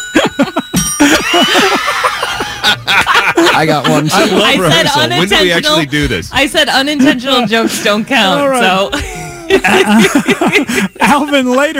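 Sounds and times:
stuck bicycle bell ringing in a metallic jangle: 0.0s - 2.0s
voices and laughter: 0.2s - 5.8s, 6.4s - 11.7s
speech: 1.4s - 1.7s, 3.6s - 11.7s.

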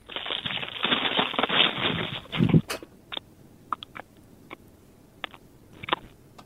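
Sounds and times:
crunchy food chewed close to phone: 0.0s - 4.6s.

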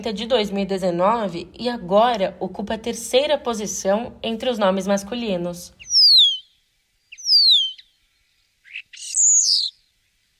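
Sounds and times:
speech: 0.0s - 5.8s
European starling calling: 5.7s - 10.0s.

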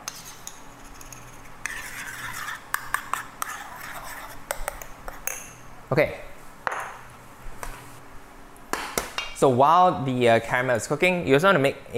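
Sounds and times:
spoon stirring a sifted dry baking mixture in a bowl: 0.0s - 5.6s
speech: 5.9s - 6.3s, 9.4s - 11.9s.

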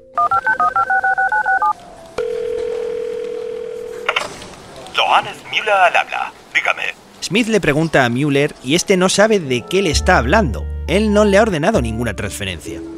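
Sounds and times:
long steady telephone tone: 0.0s - 4.1s
person answering over a telephone line: 5.0s - 7.0s
speech: 5.2s - 12.9s.

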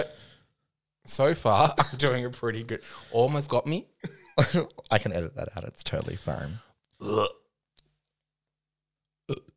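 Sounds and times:
speech: 1.0s - 7.4s, 9.3s - 9.5s
small dainty burp: 7.0s - 7.5s, 9.3s - 9.5s.

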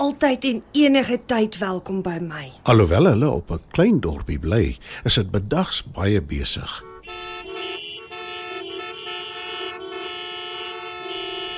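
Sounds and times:
speech: 0.0s - 6.9s
constant street rumble: 0.0s - 11.5s
car and taxi horns honking on a busy small-town street: 6.3s - 11.5s.

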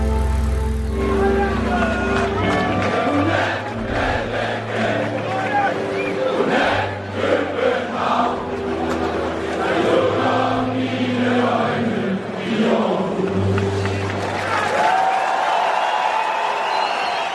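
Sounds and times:
football stadium crowd shouting and cheering: 0.2s - 17.3s
football stadium crowd singing along to a classic song: 2.4s - 14.2s.

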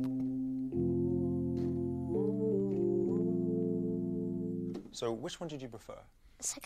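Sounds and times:
slow hymn melody played with rich reharmonized chords: 0.0s - 5.3s.

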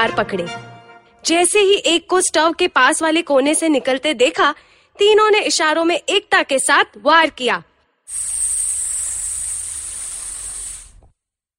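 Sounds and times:
speech: 0.0s - 8.3s
aerosol cockroach-killing spray can hissing in a kitchen: 8.1s - 11.1s.

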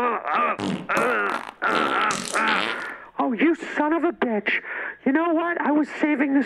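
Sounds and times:
buzzy sputtering fart sounds: 0.0s - 3.0s
speech: 3.5s - 6.4s.

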